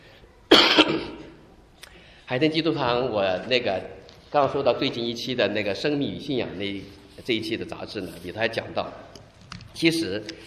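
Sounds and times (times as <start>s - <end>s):
throat clearing: 0.5s - 1.3s
cough: 0.5s - 1.4s
speech: 2.3s - 9.1s, 9.8s - 10.4s.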